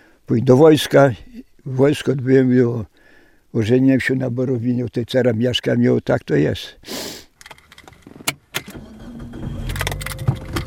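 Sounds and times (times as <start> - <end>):
speech: 0.3 - 2.9, 3.5 - 7.2
clicks and clunks like keys and a car door: 7.4 - 10.6
car engine starting and driving along unpaved roads: 7.7 - 10.6.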